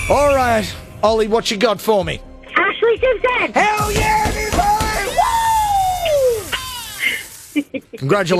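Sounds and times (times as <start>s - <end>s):
speech: 0.1s - 2.3s, 3.1s - 4.3s, 7.7s - 8.3s
person screaming excitedly: 4.1s - 7.3s.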